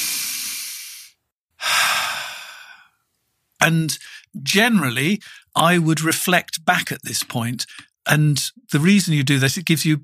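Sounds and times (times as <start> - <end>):
deep human breathing: 0.0 - 3.0, 4.0 - 4.3, 5.2 - 5.5
speech: 3.6 - 10.0.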